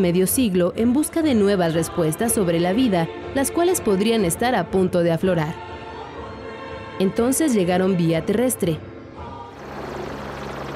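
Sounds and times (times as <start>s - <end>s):
speech: 0.0s - 5.7s, 7.0s - 8.9s
helicopter engine and rotor: 9.6s - 10.7s.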